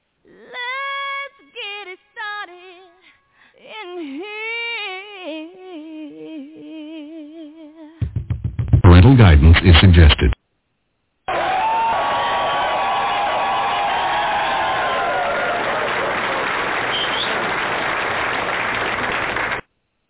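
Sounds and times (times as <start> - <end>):
speech: 9.1 - 10.4
whistles and whoops: 11.3 - 16.2, 16.8 - 17.6
crowd cheering: 11.3 - 19.6
crowd applauding: 11.8 - 19.7.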